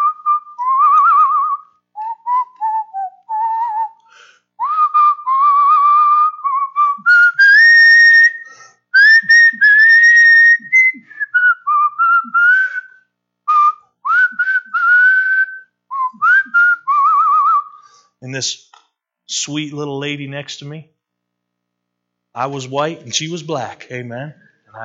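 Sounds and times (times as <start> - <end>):
person standing in line whistling a melody: 0.0 - 18.0
speech: 18.4 - 18.6, 19.4 - 21.0, 22.4 - 24.8.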